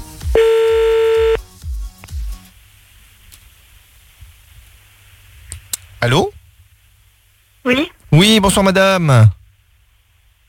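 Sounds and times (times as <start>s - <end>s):
long steady telephone electronic tone: 0.3s - 1.4s
short low repeated pulses of a telephone line ringing: 0.4s - 1.4s
speech: 6.0s - 6.4s, 7.7s - 9.4s.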